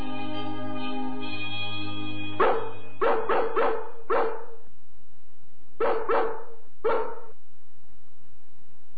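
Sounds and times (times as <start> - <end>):
steady droning tone: 0.0 - 5.8
dog barking: 2.4 - 4.6, 5.8 - 7.4.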